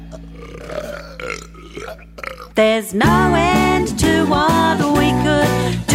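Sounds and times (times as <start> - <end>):
person burping: 0.0 - 2.7
speech: 1.9 - 5.8.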